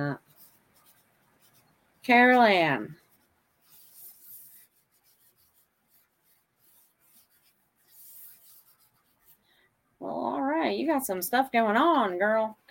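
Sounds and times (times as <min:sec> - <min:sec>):
pencil used by its wrong side scratching on paper: 0:00.1 - 0:09.4
speech: 0:02.1 - 0:03.0, 0:10.0 - 0:12.6.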